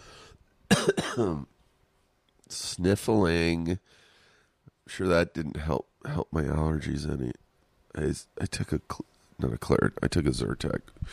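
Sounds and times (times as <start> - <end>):
person with irritated lungs coughing: 0.7 - 1.5
speech: 0.9 - 1.5, 2.5 - 4.0, 4.9 - 11.1.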